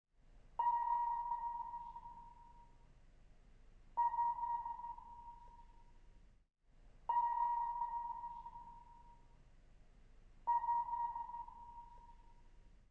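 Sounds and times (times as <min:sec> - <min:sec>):
sonar ping: 0:00.6 - 0:02.8, 0:04.0 - 0:06.0, 0:07.1 - 0:09.4, 0:10.4 - 0:12.6.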